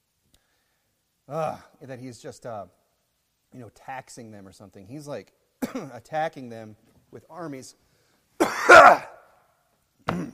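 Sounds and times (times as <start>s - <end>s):
speech: 1.3s - 2.8s, 3.5s - 7.8s
person clearing throat: 5.6s - 6.0s, 8.4s - 9.2s, 10.0s - 10.3s
person coughing: 5.6s - 6.0s, 8.4s - 9.2s, 10.1s - 10.3s.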